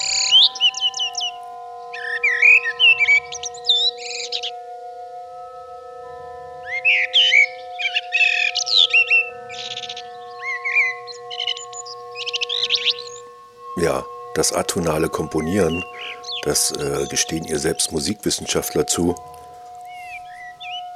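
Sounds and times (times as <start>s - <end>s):
blackbird singing loudly in rapid varied chirps, trills and whistles: 0.0s - 4.8s, 6.6s - 20.9s
steady low hum: 9.5s - 20.9s
speech: 13.8s - 19.4s.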